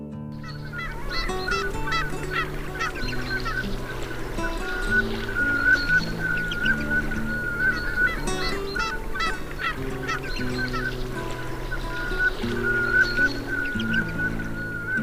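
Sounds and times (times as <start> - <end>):
high chatter: 0.3 - 15.0
velvet scoters calling: 0.3 - 15.0
steady harmonic drone: 0.4 - 15.0.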